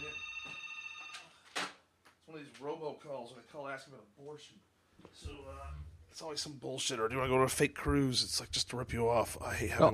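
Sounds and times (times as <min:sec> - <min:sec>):
work phone ringing with an electronic tone: 0:00.0 - 0:01.4
speech: 0:02.4 - 0:09.9.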